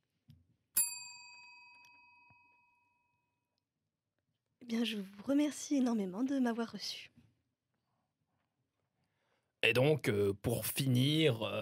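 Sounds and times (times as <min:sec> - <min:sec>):
small bell ding: 0:00.7 - 0:03.4
speech: 0:04.7 - 0:07.1, 0:09.6 - 0:11.5.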